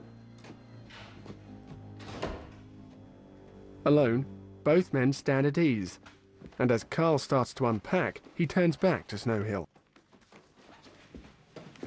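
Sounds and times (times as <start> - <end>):
low steady hum: 0.0 - 8.4
barracks door closing with a dull thunk: 2.0 - 2.7
speech: 3.9 - 9.7.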